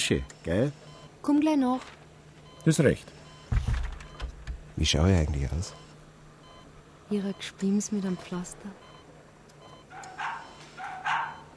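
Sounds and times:
low steady hum: 0.0s - 11.5s
speech: 0.1s - 2.0s, 2.6s - 3.7s, 4.8s - 5.8s, 7.1s - 8.8s
dog barking: 9.9s - 11.5s.

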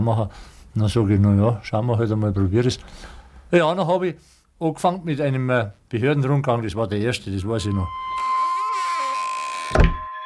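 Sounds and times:
speech: 0.0s - 8.3s
front door creaking: 7.4s - 10.2s
front door closing with a thud: 9.7s - 10.1s.

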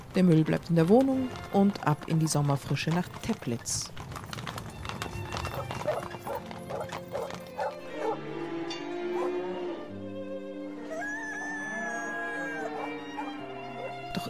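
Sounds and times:
clip-clopping hooves: 0.0s - 9.4s, 10.9s - 14.2s
speech: 0.2s - 4.1s
dog whimpering in drawn-out whines: 5.5s - 8.2s, 10.9s - 14.0s
dog barking: 5.8s - 8.2s, 9.1s - 9.4s, 12.4s - 14.0s
sustained musical tones: 6.2s - 14.2s.

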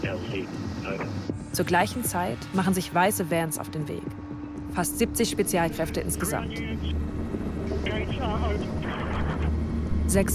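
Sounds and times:
helicopters taking off with rotor rumble and engine roar: 0.0s - 4.0s, 4.7s - 10.3s
speech: 0.0s - 7.1s, 7.8s - 9.0s, 10.1s - 10.3s.

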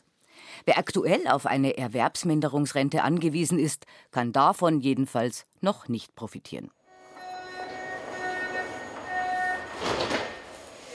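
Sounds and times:
speech: 0.6s - 6.8s
subway train humming and whining at underground station: 6.9s - 10.9s.

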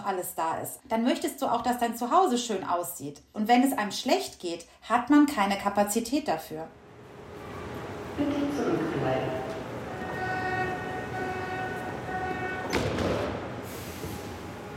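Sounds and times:
speech: 0.0s - 6.8s, 8.2s - 9.4s
train rumbling through an underground U-Bahn station: 6.8s - 14.7s.

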